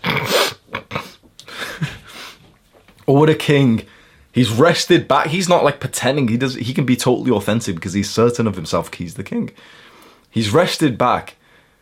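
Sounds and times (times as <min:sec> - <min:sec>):
voice imitating breathing through a half-blocked nose: 0:00.1 - 0:02.5
speech: 0:03.1 - 0:11.4.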